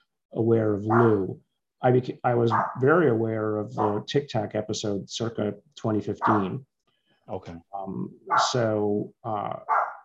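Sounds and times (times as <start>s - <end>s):
speech: 0.3s - 6.7s, 7.3s - 9.8s
dog barking: 0.9s - 1.2s, 2.5s - 2.8s, 3.8s - 4.0s, 6.2s - 6.5s, 8.3s - 8.6s, 9.7s - 10.0s.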